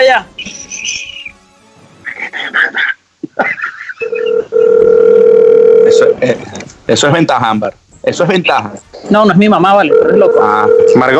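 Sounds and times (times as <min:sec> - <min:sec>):
laughter: 0:02.3 - 0:04.2
phone call ringing tone on speaker: 0:04.0 - 0:06.2, 0:09.8 - 0:11.1
speech: 0:06.2 - 0:11.1.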